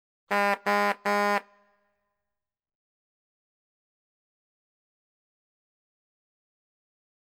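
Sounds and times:
angry motorist honking a car horn: 0.3 - 1.6.

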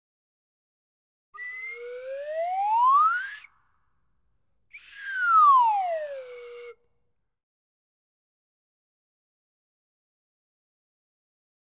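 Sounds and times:
swanee whistle ascending and descending: 1.4 - 3.5, 4.8 - 6.8.

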